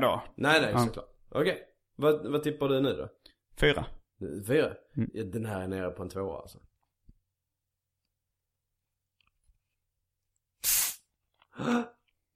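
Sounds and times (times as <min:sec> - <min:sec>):
speech: 0:00.0 - 0:06.7, 0:11.6 - 0:12.0
full bottle of lemon-lime soda cracked open with hissing gas: 0:10.6 - 0:11.1.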